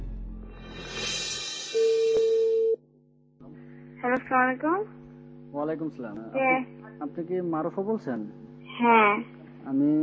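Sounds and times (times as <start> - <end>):
steady telephone line tone as a call connects: 1.8 - 2.8
speech: 4.0 - 10.0.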